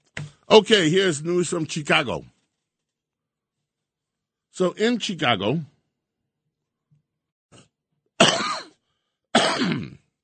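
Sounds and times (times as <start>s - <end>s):
speech: 0.5s - 2.4s, 4.6s - 5.7s
harsh coughs: 8.2s - 10.2s.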